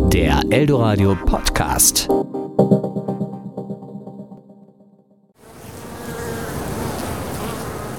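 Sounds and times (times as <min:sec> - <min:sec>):
speech: 0:00.2 - 0:02.8
single honeybee buzzing: 0:05.4 - 0:07.9.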